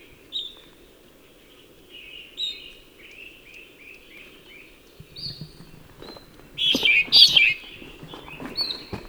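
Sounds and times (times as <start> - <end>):
Darwin's medium ground finch song: 5.0 - 9.0.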